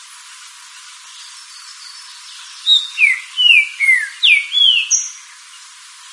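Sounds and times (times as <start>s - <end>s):
green-winged saltator singing whistled notes: 2.6s - 5.3s.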